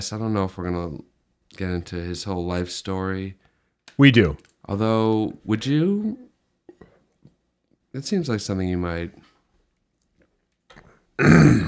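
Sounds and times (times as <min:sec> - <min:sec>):
speech: 0:00.0 - 0:06.3, 0:07.9 - 0:09.3, 0:11.2 - 0:11.6
stifled burp: 0:11.2 - 0:11.6.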